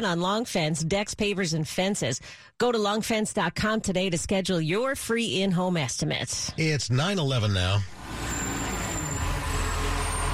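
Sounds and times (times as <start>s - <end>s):
speech: 0.0s - 8.3s
garbage truck heavy diesel engine rumbling: 6.6s - 10.3s.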